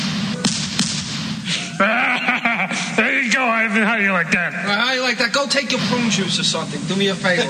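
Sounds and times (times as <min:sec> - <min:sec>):
shotgun firing: 0:00.0 - 0:01.5
laughter: 0:01.5 - 0:03.3
speech: 0:03.6 - 0:07.4.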